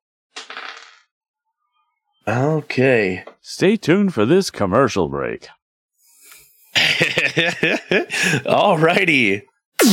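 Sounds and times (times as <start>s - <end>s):
dice being rolled across a surface: 0.4s - 1.0s
speech: 2.3s - 5.6s, 6.8s - 9.9s
laughter: 6.8s - 8.5s.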